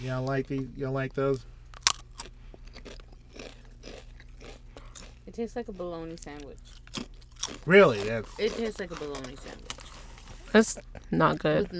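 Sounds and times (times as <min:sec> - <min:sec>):
speech: 0:00.0 - 0:01.6, 0:05.3 - 0:07.0, 0:07.6 - 0:09.7, 0:10.5 - 0:11.7
chips crunching while being eaten during a tasting: 0:01.7 - 0:10.8
laughter: 0:10.1 - 0:11.7.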